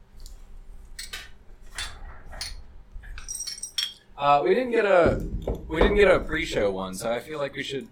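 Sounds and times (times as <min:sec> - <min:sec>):
glasses clinking in a toast: 0:01.8 - 0:04.1
speech: 0:04.2 - 0:07.8.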